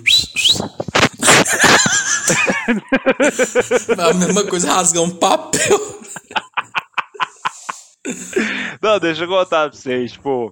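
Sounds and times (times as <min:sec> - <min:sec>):
person whistling into the microphone: 0:00.0 - 0:00.8
rhythmic giggling laughter: 0:01.2 - 0:04.3, 0:05.6 - 0:07.9
speech: 0:02.7 - 0:06.2, 0:08.1 - 0:10.4
breathy bursts: 0:07.6 - 0:08.8.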